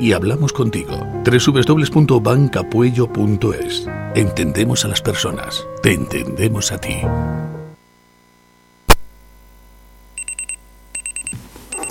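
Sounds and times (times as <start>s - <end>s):
speech: 0.0s - 7.6s
electronic alarm clock beeping in rapid clusters: 10.2s - 11.8s.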